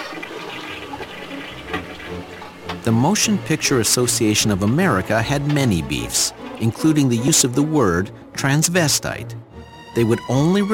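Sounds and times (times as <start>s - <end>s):
toilet flushing: 0.0s - 8.4s
speech: 2.8s - 9.4s, 10.0s - 10.7s.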